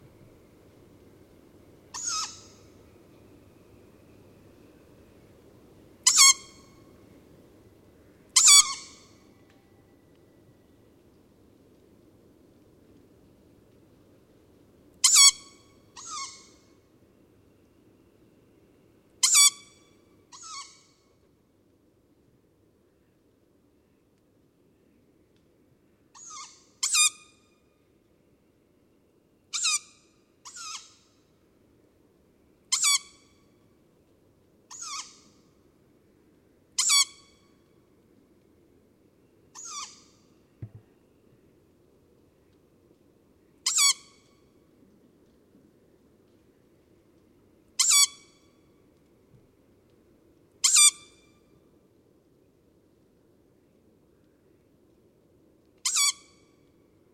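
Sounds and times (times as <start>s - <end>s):
two young tawny owls: 1.9s - 3.2s, 6.0s - 7.0s, 8.2s - 10.7s, 15.0s - 16.9s, 19.2s - 21.1s, 26.1s - 27.5s, 29.5s - 31.3s, 32.7s - 33.5s, 34.7s - 35.6s, 36.8s - 37.6s, 39.5s - 41.5s, 43.6s - 44.5s, 47.8s - 48.6s, 50.6s - 51.5s, 55.8s - 56.6s.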